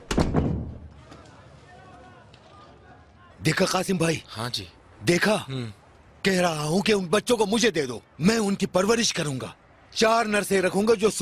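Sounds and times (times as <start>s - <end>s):
door slamming shut: 0.0s - 0.9s
speech: 3.4s - 11.2s.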